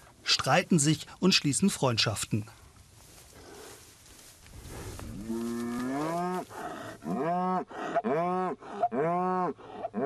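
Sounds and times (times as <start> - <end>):
speech: 0.4 - 2.6
cattle mooing at a cold hay feeder: 5.0 - 10.0.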